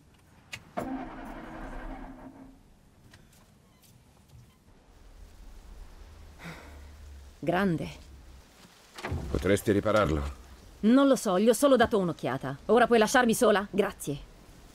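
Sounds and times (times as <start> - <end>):
car engine starting and idling: 0.8 - 2.7
speech: 7.4 - 8.0, 9.4 - 14.3.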